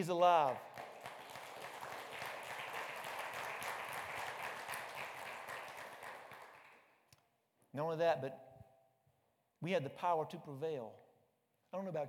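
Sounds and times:
speech: 0:00.0 - 0:00.8, 0:07.7 - 0:08.4, 0:09.6 - 0:11.0, 0:11.7 - 0:12.0
audience applause: 0:00.5 - 0:06.8.

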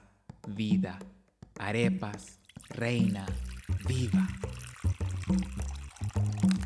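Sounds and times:
speech: 0:00.5 - 0:04.5, 0:05.3 - 0:05.6
water pouring into a large bowl: 0:01.9 - 0:06.6.

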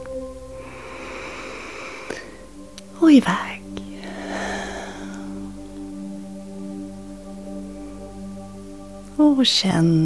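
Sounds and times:
quiet low tonal background: 0:00.0 - 0:10.0
deep breath in: 0:00.6 - 0:02.5, 0:03.8 - 0:05.6
speech: 0:03.0 - 0:03.6, 0:09.2 - 0:10.0.

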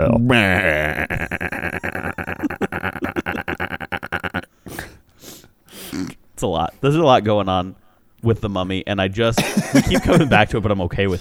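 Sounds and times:
speech: 0:00.0 - 0:01.5, 0:06.4 - 0:11.1
voice imitating a sheep's baa: 0:00.0 - 0:04.5
laughter: 0:00.3 - 0:04.5, 0:09.4 - 0:11.1.

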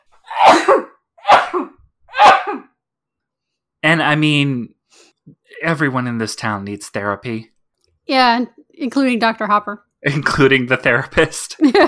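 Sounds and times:
person sneezing: 0:00.3 - 0:02.7
speech: 0:03.9 - 0:04.8, 0:05.6 - 0:07.5, 0:08.1 - 0:11.8
laughter: 0:11.3 - 0:11.8.

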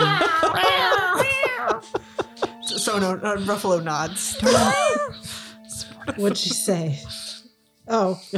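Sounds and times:
person imitating a cat meowing: 0:00.0 - 0:01.8, 0:04.4 - 0:05.2
laughter: 0:00.0 - 0:06.8
speech: 0:03.0 - 0:05.2, 0:06.1 - 0:07.2, 0:07.9 - 0:08.3.

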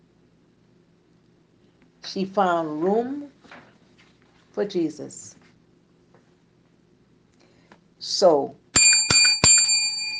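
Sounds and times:
speech: 0:02.1 - 0:03.6, 0:04.6 - 0:05.4, 0:08.0 - 0:08.6
bright metallic bell ringing: 0:08.8 - 0:10.1.

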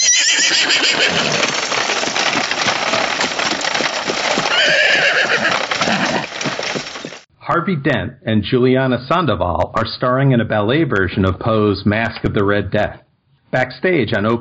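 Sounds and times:
horses whinnying: 0:00.0 - 0:07.2
horse-drawn coach rattling along: 0:00.0 - 0:07.3
loud clatter of horse hooves: 0:00.0 - 0:07.3
speech: 0:00.6 - 0:01.4, 0:07.6 - 0:14.3.

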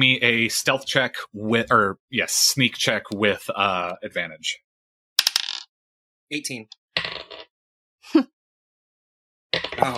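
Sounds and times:
speech: 0:00.0 - 0:04.6, 0:06.3 - 0:07.1, 0:08.1 - 0:08.4, 0:09.8 - 0:09.9
small dice clattering and rattling across a hard surface: 0:05.2 - 0:05.7.

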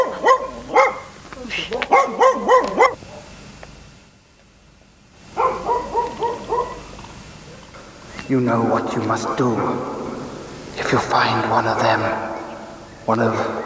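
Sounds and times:
dog barking: 0:00.0 - 0:01.1, 0:01.8 - 0:03.4, 0:05.3 - 0:07.7
speech: 0:08.3 - 0:10.0, 0:10.9 - 0:12.3, 0:13.1 - 0:13.5.

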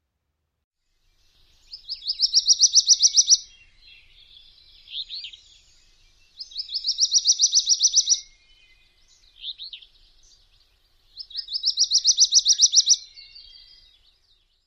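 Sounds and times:
Wilson's Warbler song: 0:00.8 - 0:14.6.

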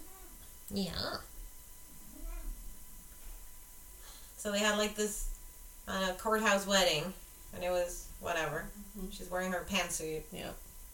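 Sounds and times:
quiet hiss of noise: 0:00.0 - 0:10.9
speech: 0:00.7 - 0:01.3, 0:04.4 - 0:05.3, 0:05.9 - 0:10.6
cat meowing: 0:02.1 - 0:02.6.

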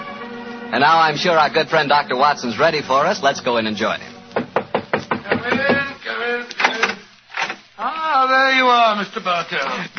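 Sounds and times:
speech: 0:00.7 - 0:04.1, 0:08.3 - 0:09.9
sharp knocks on a door: 0:04.4 - 0:05.9
door swinging open: 0:06.6 - 0:07.6.

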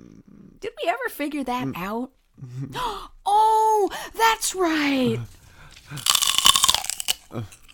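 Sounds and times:
speech: 0:00.6 - 0:06.2, 0:07.3 - 0:07.6
person crunching celery while eating: 0:05.8 - 0:07.7.

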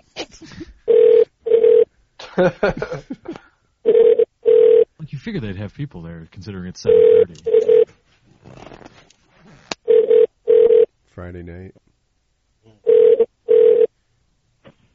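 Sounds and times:
speech: 0:00.3 - 0:00.7, 0:02.4 - 0:03.4, 0:05.2 - 0:07.8, 0:11.2 - 0:11.8
telephone ringback tone heard through the line while calling an electronics department: 0:00.9 - 0:01.9, 0:03.9 - 0:04.9, 0:06.9 - 0:07.8, 0:09.9 - 0:10.9, 0:12.9 - 0:13.9.

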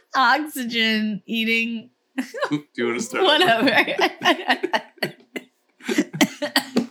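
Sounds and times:
speech: 0:00.2 - 0:05.2
laughter: 0:03.0 - 0:06.6
harsh coughing: 0:05.1 - 0:06.8.

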